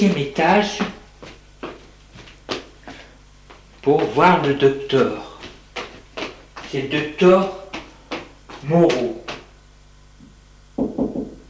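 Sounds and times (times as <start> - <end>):
speech: 0.0 - 1.0, 3.8 - 5.3, 6.7 - 7.6, 8.6 - 9.2
knocking on a doctor's office door: 10.8 - 11.4.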